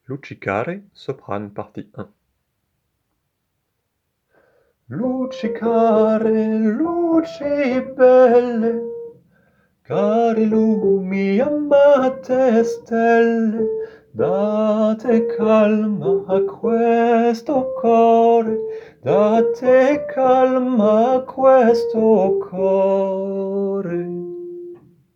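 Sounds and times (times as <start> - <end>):
sopranos singing: 4.9 - 9.0, 9.9 - 24.8.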